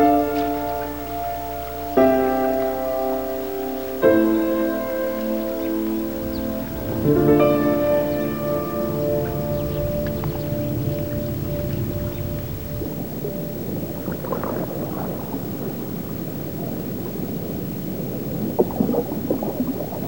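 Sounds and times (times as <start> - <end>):
sustained tonal chords: 0.0 - 20.0
canoe paddles splashing and sloshing on river water: 4.6 - 20.0.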